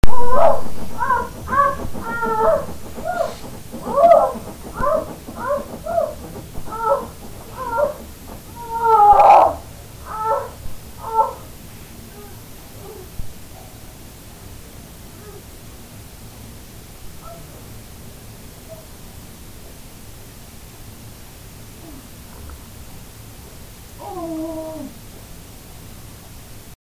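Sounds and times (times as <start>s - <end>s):
neighbours in Bergen Norway: 0.0s - 12.6s.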